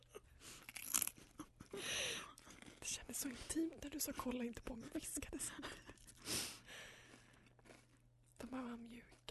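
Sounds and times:
potato crisps crunching and chewed during ASMR-style tasting: 0.5s - 3.1s, 5.9s - 9.2s
speech: 3.2s - 6.0s, 8.7s - 9.2s.

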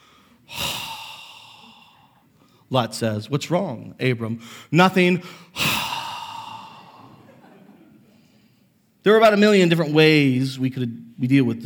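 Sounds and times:
exaggerated heavy breathing: 0.0s - 2.7s, 4.4s - 7.6s
speech: 2.7s - 5.8s, 9.0s - 11.6s
laughter: 7.0s - 8.2s.

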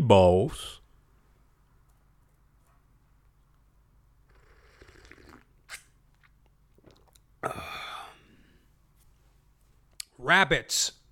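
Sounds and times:
speech: 0.1s - 0.8s, 10.2s - 11.0s
person sipping coffee: 4.3s - 8.3s.

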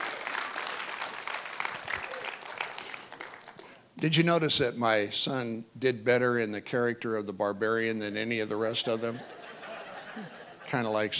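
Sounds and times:
room full of people applauding: 0.0s - 3.6s
speech: 4.0s - 9.4s, 10.2s - 11.1s
laughter: 8.9s - 11.1s.

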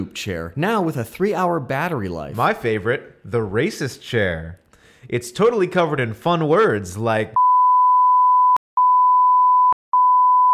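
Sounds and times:
speech: 0.0s - 7.4s
censoring beep sound effect: 7.4s - 10.5s.

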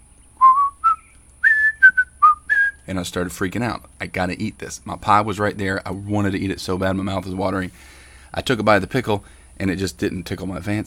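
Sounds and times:
person whistling a television theme tune: 0.4s - 2.8s
speech: 2.9s - 10.8s.

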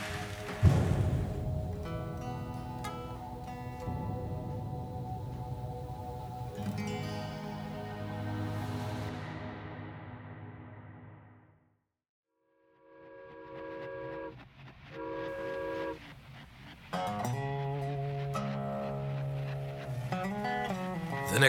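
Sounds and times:
train rumbling along the tracks: 0.0s - 9.1s, 13.6s - 21.4s.

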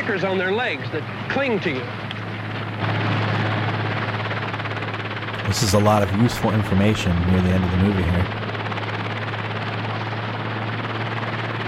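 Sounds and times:
helicopter taking off with rotor thrum and engine whine: 0.0s - 11.6s
speech: 0.1s - 2.0s, 5.5s - 8.4s.

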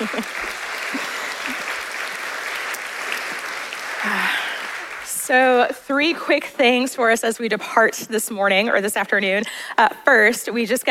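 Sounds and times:
crowd applause in a large room: 0.0s - 5.6s
speech: 5.3s - 10.8s.

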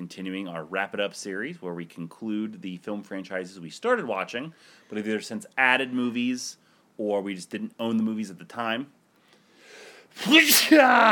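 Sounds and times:
speech: 0.1s - 9.0s, 10.1s - 11.0s
soft stifled sneeze: 10.1s - 11.0s.

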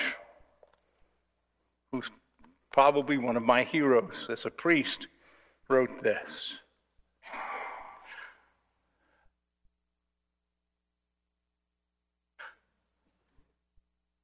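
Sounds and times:
speech: 1.9s - 2.2s, 2.8s - 6.6s
person yawning: 7.2s - 8.5s.

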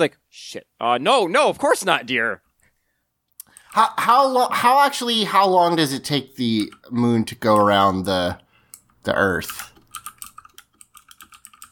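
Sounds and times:
speech: 0.0s - 2.4s, 3.7s - 8.4s, 9.0s - 9.7s
frantic typing on a computer keyboard: 6.2s - 7.9s, 8.8s - 11.7s.

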